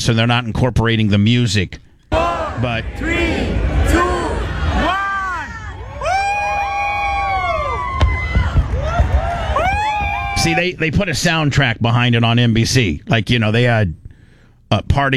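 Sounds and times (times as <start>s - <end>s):
speech: 0.0s - 1.8s, 2.6s - 4.1s, 10.4s - 14.0s, 14.7s - 15.1s
large crowd cheering and shouting: 2.1s - 10.8s
fireworks sharp bangs: 2.9s - 10.6s.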